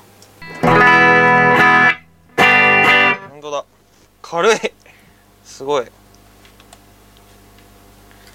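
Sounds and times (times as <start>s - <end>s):
Gibson Les Paul electric guitar chords played through effects in a showroom: 0.4s - 3.4s
speech: 4.3s - 4.8s, 5.6s - 6.0s.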